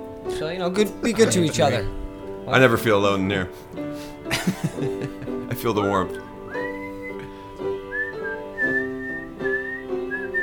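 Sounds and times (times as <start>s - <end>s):
speech: 0.3s - 6.3s
laughter: 1.0s - 1.9s, 4.3s - 5.8s
person whistling a lively tune: 6.1s - 10.4s.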